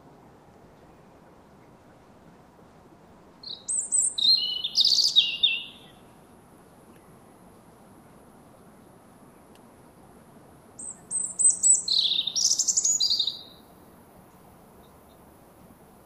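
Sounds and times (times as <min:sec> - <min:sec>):
European robin Erithacus rubecula twittering: 0:03.4 - 0:06.0, 0:10.8 - 0:13.7.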